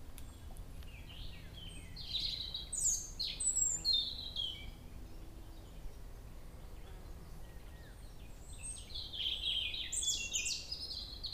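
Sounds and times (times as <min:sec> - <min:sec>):
common blackbird singing: 0:00.0 - 0:11.3
low background noise: 0:00.0 - 0:11.3.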